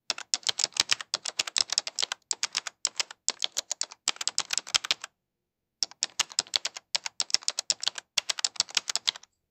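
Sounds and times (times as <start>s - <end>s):
office keyboard typing: 0.1s - 5.1s, 5.8s - 9.3s.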